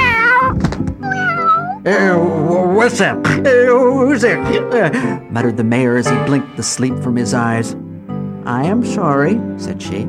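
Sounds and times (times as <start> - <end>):
cat meowing: 0.0 - 1.9
speech: 1.8 - 7.8, 8.4 - 10.0.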